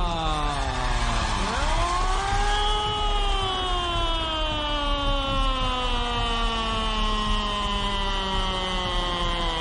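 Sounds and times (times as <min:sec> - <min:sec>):
ambulance siren wailing: 0:00.2 - 0:09.6.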